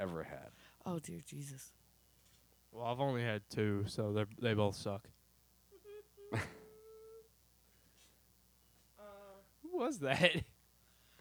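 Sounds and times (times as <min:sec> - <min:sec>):
speech: 0:00.0 - 0:01.8, 0:02.7 - 0:05.2, 0:06.3 - 0:06.6, 0:09.8 - 0:10.5
dog giving short high whines and a long thin whine: 0:05.8 - 0:07.3.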